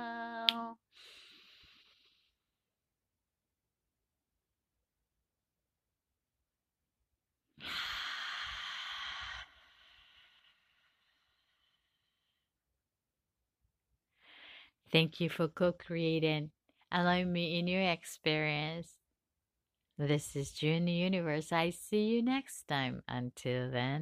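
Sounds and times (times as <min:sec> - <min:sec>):
long deep breath during a guided meditation: 0:07.6 - 0:12.5
speech: 0:14.9 - 0:19.0, 0:20.0 - 0:23.9.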